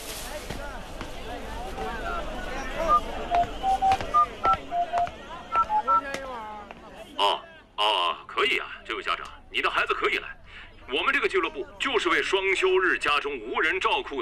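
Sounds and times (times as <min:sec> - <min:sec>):
busy hum of crowd noise: 0:00.0 - 0:14.1
telephone keypad beeps as digits are dialed: 0:02.9 - 0:06.1
speech: 0:12.6 - 0:14.1.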